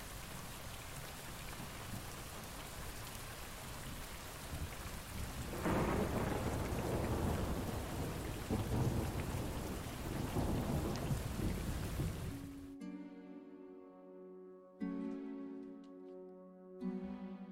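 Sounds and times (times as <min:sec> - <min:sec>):
heavy rain pouring: 0:00.0 - 0:12.8
sustained music: 0:12.3 - 0:17.4.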